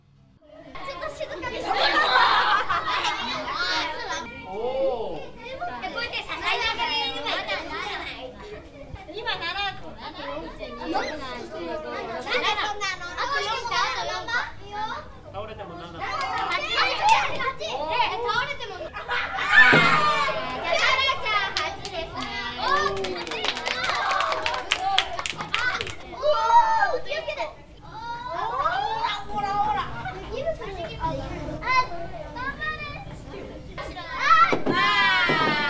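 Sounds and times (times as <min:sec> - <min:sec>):
nearly 20 young children chattering and calling out excitedly around a table: 0:00.4 - 0:35.6
children giggling: 0:01.7 - 0:03.6, 0:18.8 - 0:20.8.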